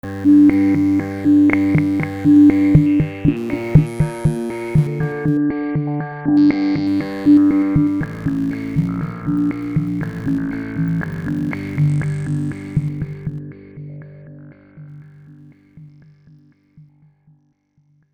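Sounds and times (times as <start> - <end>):
Moog Modular synthesizer percussion sequence: 0.0 - 5.4, 6.4 - 13.4.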